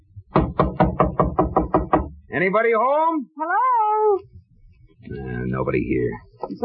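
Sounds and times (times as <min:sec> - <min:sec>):
solid knocks on a door: 0:00.3 - 0:02.2
speech: 0:02.3 - 0:04.3, 0:05.1 - 0:06.6.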